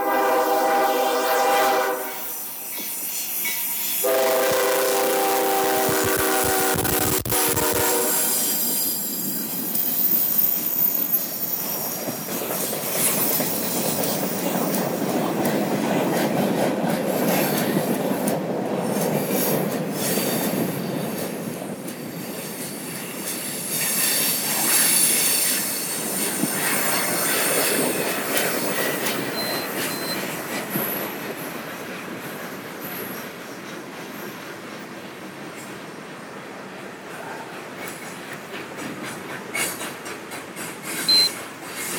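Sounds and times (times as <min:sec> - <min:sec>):
freight train horn at a crossing: 0:00.0 - 0:02.6, 0:04.0 - 0:08.6
sustained rumble of slow freight train wheels and cars passing a crossing: 0:00.0 - 0:41.9.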